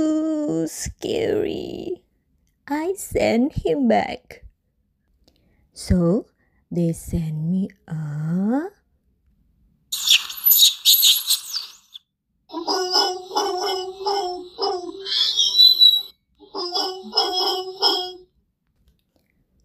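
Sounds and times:
speech: 0.0 - 2.0, 2.7 - 4.4, 5.8 - 8.8, 16.6 - 18.2
harsh hissing burst: 10.0 - 12.0
monkey screeching and chattering: 10.0 - 12.0, 12.6 - 18.2
short rising squeal: 10.0 - 12.0, 15.1 - 16.1.

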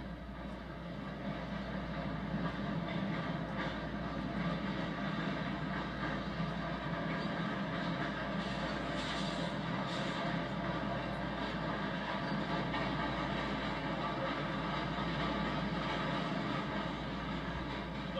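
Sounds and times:
long freight train rolling past with rumble and mechanical hum: 0.0 - 18.1.

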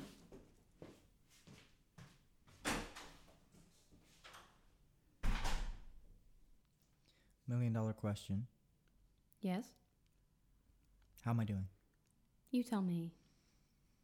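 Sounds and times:
door opening and closing: 2.6 - 3.3, 5.2 - 6.0
heavy door thuds: 5.2 - 5.9
speech: 7.5 - 8.6, 9.4 - 9.8, 11.2 - 11.8, 12.5 - 13.2.

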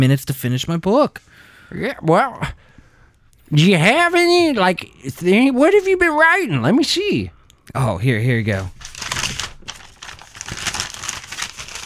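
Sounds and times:
speech: 0.0 - 2.7, 3.5 - 8.8
folded papers being unfolded and handled: 8.5 - 11.8.

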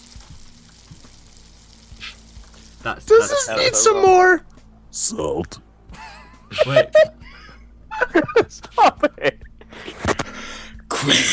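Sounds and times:
stew bubbling and simmering in a pot: 0.0 - 3.0
speech: 2.8 - 5.7, 6.6 - 7.1, 8.2 - 9.4
laughter: 6.0 - 10.4.

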